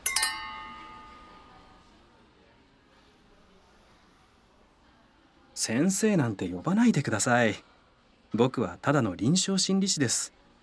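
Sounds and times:
glasses clinking in a toast: 0:00.0 - 0:01.7
speech: 0:05.6 - 0:07.7, 0:08.3 - 0:10.4.

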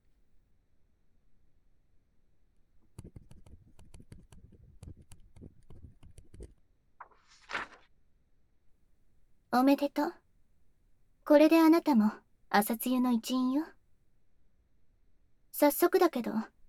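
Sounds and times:
pen writing a signature on paper: 0:03.0 - 0:06.5
speech: 0:09.5 - 0:10.2, 0:11.3 - 0:13.8, 0:15.6 - 0:16.6.

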